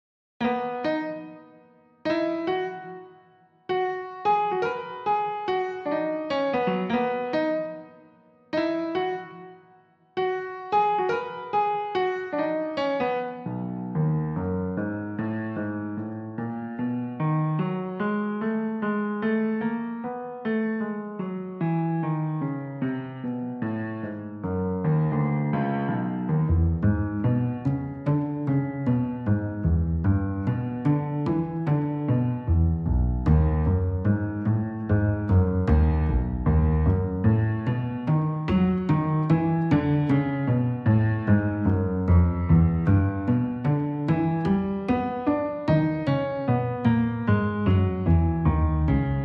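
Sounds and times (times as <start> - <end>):
piano: 0.4 - 49.2
double bass: 26.3 - 44.7, 47.3 - 49.2.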